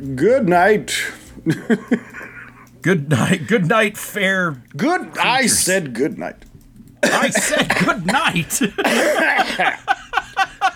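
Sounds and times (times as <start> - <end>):
speech: 0.0 - 2.2, 2.8 - 10.0
laughter: 1.4 - 2.7, 7.1 - 10.7
person coughing: 7.0 - 9.8.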